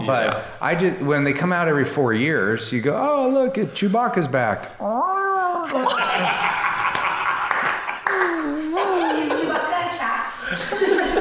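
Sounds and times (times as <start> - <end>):
speech: 0.0 - 6.6
laughter: 5.7 - 11.2
person imitating a growling cat-like creature: 8.0 - 9.6.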